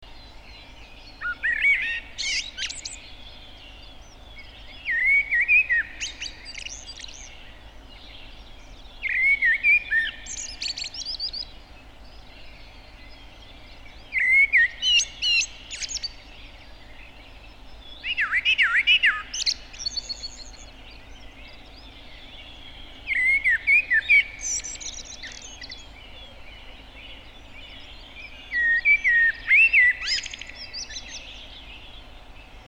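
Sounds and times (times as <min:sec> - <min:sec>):
blackbird singing: 0:00.1 - 0:32.6.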